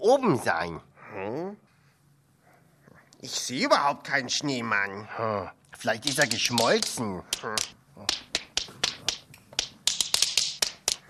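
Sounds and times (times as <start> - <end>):
speech: 0.0 - 1.6, 3.2 - 8.2
tap dance steps on a floor: 8.1 - 11.0.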